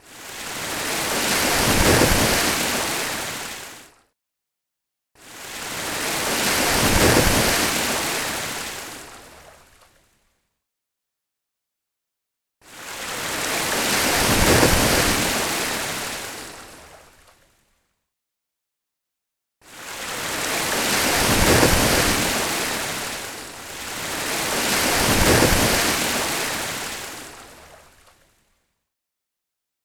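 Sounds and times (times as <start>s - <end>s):
water waves: 0.0s - 4.0s, 5.2s - 9.9s, 12.7s - 17.4s, 19.7s - 28.3s.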